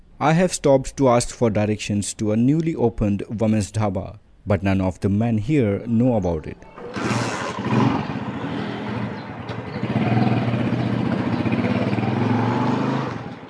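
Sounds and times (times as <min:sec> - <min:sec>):
speech: 0:00.2 - 0:07.8
road noise: 0:06.6 - 0:13.4
motorbike engine droning during a ride in Karachi: 0:06.8 - 0:13.4.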